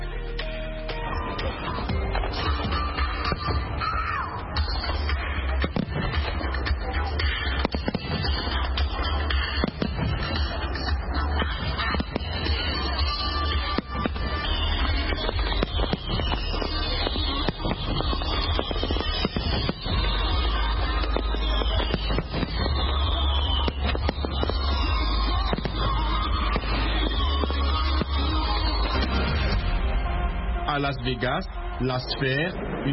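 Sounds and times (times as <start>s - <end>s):
crowd murmur: 0.0s - 30.8s
fireworks exploding over the National Mall in Washington DC: 0.9s - 32.9s
speech: 30.8s - 32.9s.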